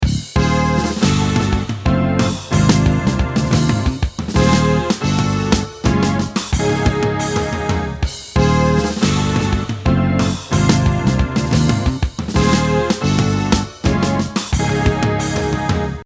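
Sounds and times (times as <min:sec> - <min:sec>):
SynthAxe guitar synthesizer: 0:00.4 - 0:16.0.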